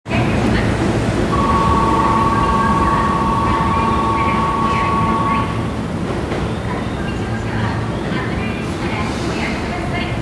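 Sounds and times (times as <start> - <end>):
train sounds: 0.1 - 10.2.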